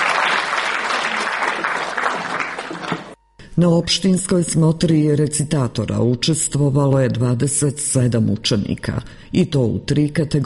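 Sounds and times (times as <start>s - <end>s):
audience applause at a school event: 0.0s - 3.2s
speech: 3.6s - 10.4s.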